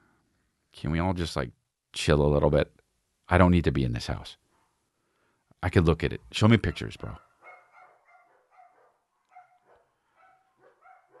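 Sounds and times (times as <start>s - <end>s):
speech: 0.8s - 4.4s, 5.6s - 7.2s
several dogs barking: 6.6s - 11.1s.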